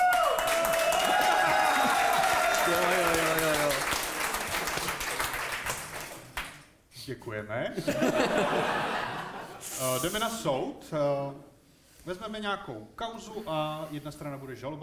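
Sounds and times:
audience applause: 0.0s - 6.6s
speech: 7.1s - 9.1s, 9.8s - 14.8s
laughter: 7.8s - 9.7s.

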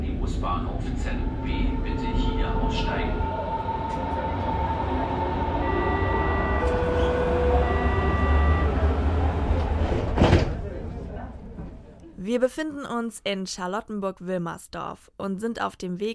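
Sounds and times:
S-Bahn commuter train riding along the rails in Charlottenburg-Wilmersdorf Berlin: 0.0s - 12.1s
speech: 0.3s - 3.3s, 3.9s - 4.8s, 12.2s - 16.1s.

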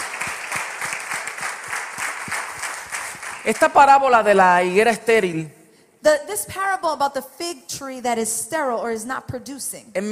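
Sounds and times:
audience applauding: 0.0s - 4.1s
speech: 3.4s - 10.1s.

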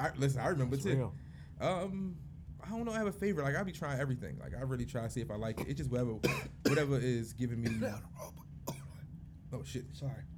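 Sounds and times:
speech: 0.0s - 8.4s, 9.5s - 10.3s
low steady hum: 0.0s - 10.3s
person coughing after choking on drink: 5.6s - 6.9s, 7.6s - 9.0s.

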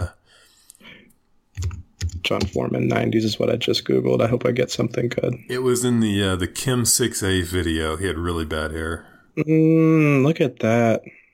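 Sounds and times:
soft breathy sound: 0.2s - 1.3s
typing on a computer keyboard: 1.6s - 2.6s
speech: 2.2s - 11.2s.

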